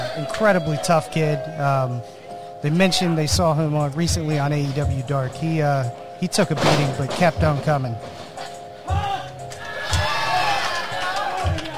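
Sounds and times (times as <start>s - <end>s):
speech: 0.2s - 8.2s
low heavy rhythmic thumps: 2.7s - 11.7s
crowd cheering and chanting at a wrestling event: 8.9s - 11.7s.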